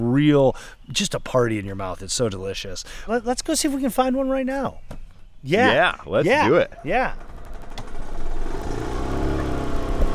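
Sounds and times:
speech: 0:00.0 - 0:07.3
small golf cart motor humming while driving through a cherry orchard: 0:06.7 - 0:10.1.

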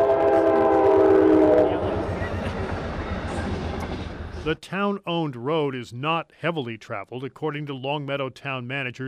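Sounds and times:
high-speed commuter train horn blaring at rail crossing: 0:00.0 - 0:02.2
low rumble of a passing high-speed commuter train: 0:00.0 - 0:04.5
speech: 0:04.5 - 0:09.0.

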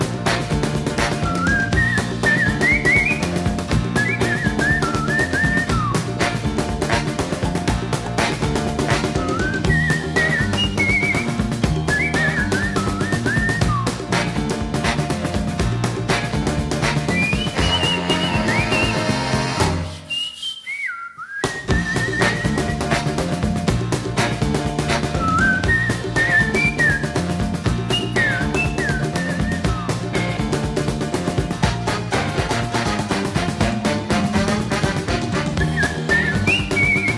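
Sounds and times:
bouncy piano-driven New Orleans rhythm and blues band: 0:00.0 - 0:20.2, 0:21.4 - 0:37.1
bright whistled melody: 0:01.0 - 0:06.4, 0:08.9 - 0:14.3, 0:16.8 - 0:23.3, 0:24.9 - 0:30.5, 0:35.4 - 0:37.1.

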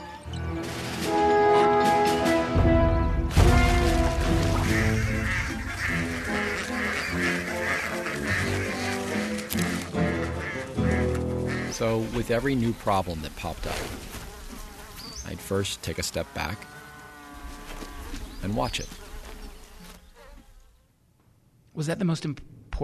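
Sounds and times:
ducks quacking: 0:01.4 - 0:13.6
speech: 0:11.8 - 0:14.1, 0:15.3 - 0:16.7, 0:18.4 - 0:19.0, 0:21.8 - 0:22.8.

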